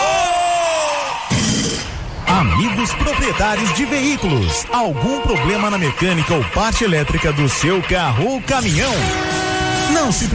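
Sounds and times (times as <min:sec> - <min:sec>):
man giving a loud sustained yell: 0:00.0 - 0:01.3, 0:02.3 - 0:09.1
speech: 0:02.6 - 0:10.3.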